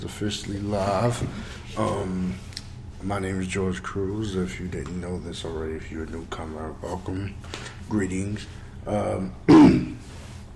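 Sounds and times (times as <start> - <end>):
speech: 0.2 - 10.2
person coughing while recovering from an illness: 9.5 - 10.0.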